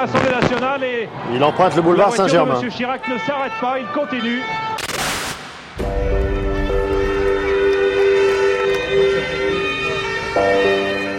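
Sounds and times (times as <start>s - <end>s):
speech: 0.0s - 4.8s
sirens of a presidential motorcade speeding through Paris streets: 5.8s - 11.1s.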